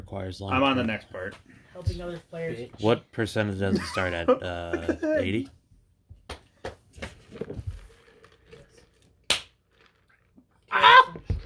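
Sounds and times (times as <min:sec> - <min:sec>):
speech: 0:00.1 - 0:05.6
hand slapping a thigh: 0:06.1 - 0:07.2, 0:09.3 - 0:09.5.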